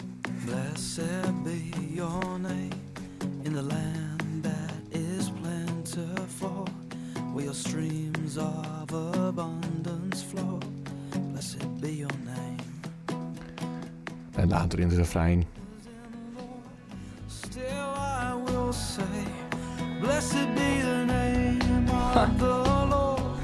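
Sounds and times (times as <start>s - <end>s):
calm studio worship song with soft chords and light beat: 0.3s - 13.0s, 15.5s - 23.4s
person singing: 0.3s - 12.9s, 15.6s - 23.4s
speech: 14.5s - 15.6s.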